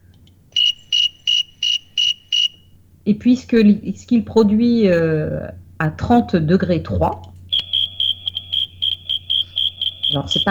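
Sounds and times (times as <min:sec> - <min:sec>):
faint low hum: 0:00.0 - 0:10.4
thermometer cricket chirping at 24.8 degrees: 0:00.5 - 0:02.7, 0:07.5 - 0:10.4
speech: 0:03.1 - 0:07.3, 0:10.1 - 0:10.4.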